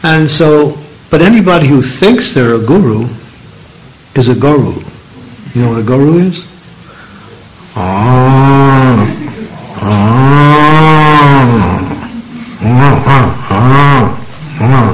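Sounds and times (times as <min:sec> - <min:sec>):
speech: 0:00.0 - 0:03.2, 0:04.2 - 0:04.9, 0:05.5 - 0:06.5, 0:07.8 - 0:09.0
person with a slight sore throat imitating a cow mooing: 0:07.7 - 0:14.9.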